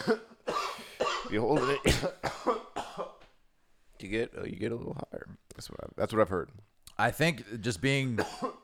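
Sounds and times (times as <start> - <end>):
speech: 0.0 - 0.3, 1.3 - 2.5, 4.0 - 8.5
person coughing after holding in a lungful of smoke: 0.0 - 3.2, 8.2 - 8.6.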